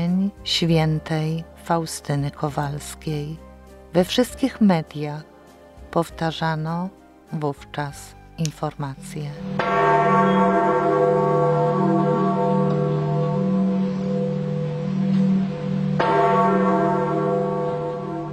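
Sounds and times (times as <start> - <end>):
speech: 0.4 - 5.3, 6.0 - 10.5
large bell tolling: 9.4 - 18.3.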